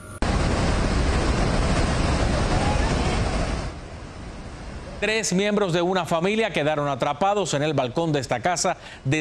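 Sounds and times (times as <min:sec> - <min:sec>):
rushing floodwater carrying mud and debris: 0:00.3 - 0:06.4
speech: 0:05.0 - 0:09.1.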